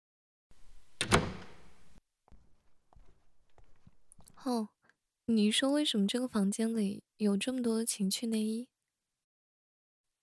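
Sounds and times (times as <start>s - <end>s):
door to a small back room closing: 0.6s - 2.0s
speech: 4.4s - 8.7s.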